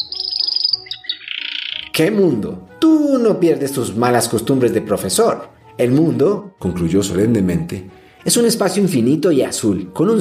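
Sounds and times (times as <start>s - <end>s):
canary chirping and trilling: 0.0s - 2.1s
speech: 2.0s - 10.1s.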